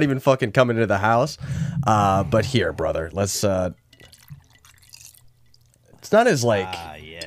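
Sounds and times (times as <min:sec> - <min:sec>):
speech: 0:00.0 - 0:03.8, 0:06.1 - 0:07.2
margarita poured from a cocktail shaker into a glass: 0:03.7 - 0:06.0.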